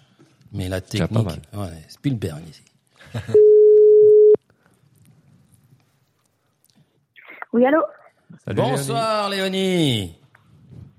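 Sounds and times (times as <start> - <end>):
speech: 0.5 - 3.5, 7.6 - 10.2
telephone ringing tone on an outgoing call: 3.4 - 4.4.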